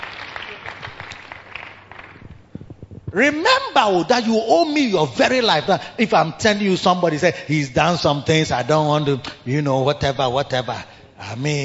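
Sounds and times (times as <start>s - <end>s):
audience clapping: 0.0s - 2.8s
speech: 3.1s - 11.6s.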